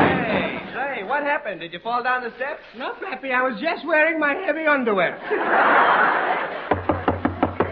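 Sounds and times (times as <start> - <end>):
steady broadband hiss: 0.2 - 3.6
speech: 1.2 - 6.7
laughter: 5.2 - 7.7
knocking at a door: 6.7 - 7.7.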